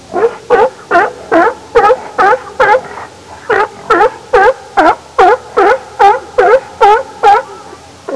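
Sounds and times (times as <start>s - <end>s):
sea lion: 0.1s - 8.1s.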